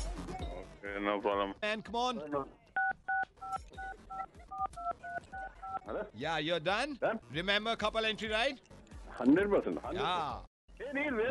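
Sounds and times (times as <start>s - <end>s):
speech: 0.8s - 2.6s, 3.5s - 11.2s
mobile phone keypad tones as a debit card number is entered: 2.8s - 5.8s.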